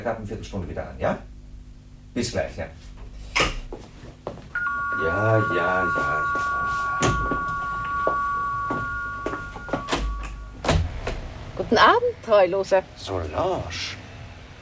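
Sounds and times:
speech: 0:00.0 - 0:01.3, 0:02.1 - 0:03.0, 0:05.0 - 0:07.3, 0:11.6 - 0:14.0
electronic two-tone doorbell ringing at a front door: 0:04.6 - 0:10.6.

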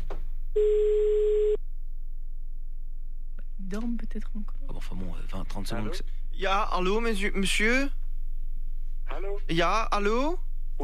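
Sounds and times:
faint low hum: 0:00.0 - 0:10.8
speech: 0:00.6 - 0:00.9, 0:03.7 - 0:08.0, 0:09.1 - 0:10.8
ringback tone from an unanswered phone call: 0:00.6 - 0:01.6.

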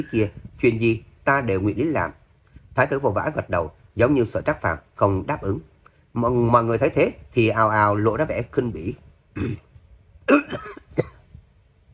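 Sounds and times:
speech: 0:00.0 - 0:02.2, 0:02.8 - 0:09.7, 0:10.3 - 0:10.7
violent dry coughing from a weakened emperor coughing up blood: 0:09.4 - 0:11.3.

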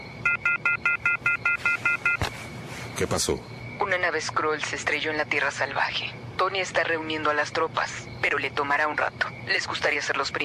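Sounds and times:
rapid electronic two-tone beeping from a phone alert call: 0:00.0 - 0:02.3
speech: 0:03.0 - 0:10.4.

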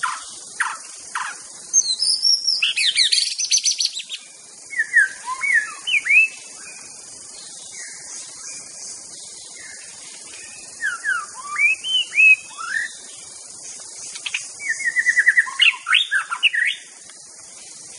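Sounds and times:
wild white-rumped shama singing in forest: 0:00.0 - 0:06.9, 0:09.6 - 0:13.1, 0:14.1 - 0:16.9
constant insect hum in forest: 0:00.0 - 0:17.9.

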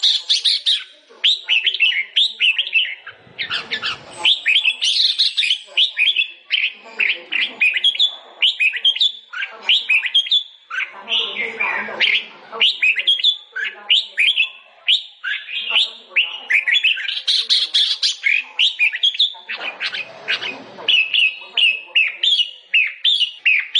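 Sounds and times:
sooty-headed bulbul song of whistled and chattering notes: 0:00.0 - 0:23.7.

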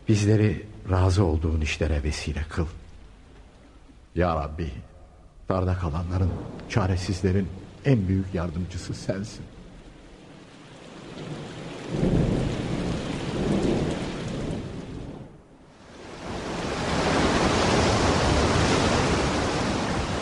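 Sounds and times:
heavy rain from a storm at sea: 0:00.0 - 0:20.2
speech: 0:00.1 - 0:02.8, 0:04.2 - 0:04.9, 0:05.5 - 0:09.6, 0:11.2 - 0:12.3
deep rumbling thunder from a storm at sea: 0:06.0 - 0:20.2.

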